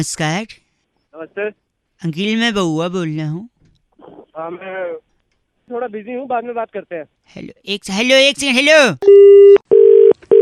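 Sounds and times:
speech: 0.0s - 0.6s, 1.2s - 3.5s, 4.4s - 5.1s, 5.7s - 9.7s
phone disconnected tone electronic beeps: 9.0s - 10.3s.

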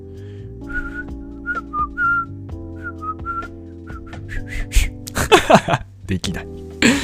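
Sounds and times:
person whistling a short melody: 0.6s - 5.0s
laughter: 5.1s - 5.8s
speech: 5.5s - 7.0s.

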